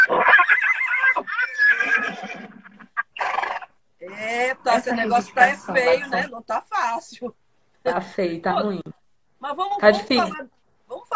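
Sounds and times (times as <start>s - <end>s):
mare giving a short breathy snort: 0.0s - 3.8s
mare neighing: 0.0s - 6.2s
speech: 4.8s - 10.5s.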